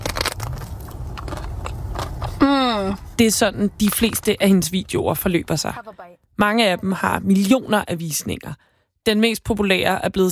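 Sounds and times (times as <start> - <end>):
woman biting and chewing soft cream cakes: 0.0 - 2.4
low hum: 0.0 - 10.1
speech: 2.9 - 10.2.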